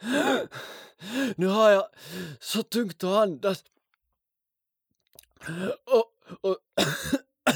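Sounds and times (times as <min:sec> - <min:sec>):
speech: 0:01.4 - 0:03.8, 0:05.4 - 0:07.5
person with asthma coughing harshly: 0:06.8 - 0:07.5.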